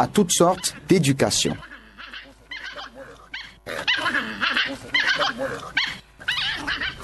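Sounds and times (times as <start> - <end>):
speech: 0.0 - 1.7
dog barking and yelping: 1.6 - 7.0.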